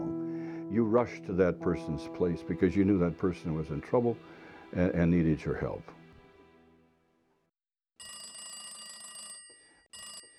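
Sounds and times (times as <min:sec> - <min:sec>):
speech: 0:00.7 - 0:06.0
old party-line telephone bell ringing in a coded pattern: 0:08.0 - 0:10.3.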